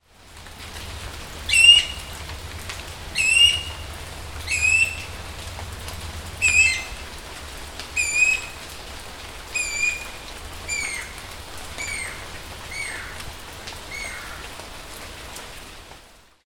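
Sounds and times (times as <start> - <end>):
Guira guira guira cuckoo calling: 1.4 - 2.3, 3.1 - 5.5, 6.4 - 7.2, 7.8 - 14.5.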